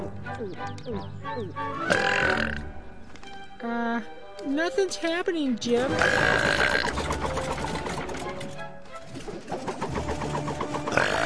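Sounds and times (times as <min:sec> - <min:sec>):
music: 0:00.0 - 0:11.2
speech: 0:00.4 - 0:02.8, 0:03.6 - 0:07.6
person burping after drinking a purple drink: 0:01.9 - 0:02.6, 0:06.0 - 0:06.9.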